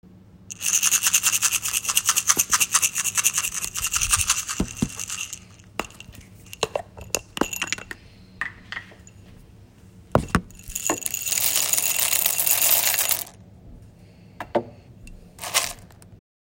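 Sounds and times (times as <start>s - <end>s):
coffee beans: 0.5s - 9.2s, 10.2s - 13.4s, 15.1s - 16.1s.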